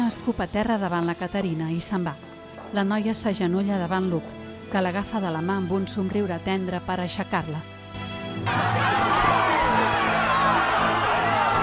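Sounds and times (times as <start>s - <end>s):
speech: 0.1s - 8.8s
dense agitated crowd roaring and shouting in the streets: 8.4s - 11.6s
people yelling: 8.5s - 11.6s.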